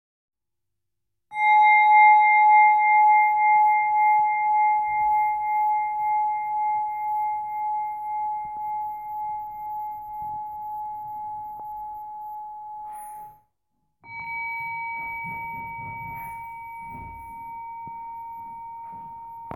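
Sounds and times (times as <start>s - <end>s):
Enso singing bowl: 1.3s - 19.5s.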